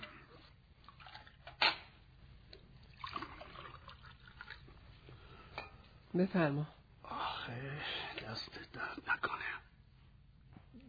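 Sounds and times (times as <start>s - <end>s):
woman pouring water into a glass: 0.8s - 1.6s, 2.8s - 4.8s
single sharp clink of glass: 5.5s - 5.9s
speech: 6.2s - 6.8s, 7.5s - 9.6s.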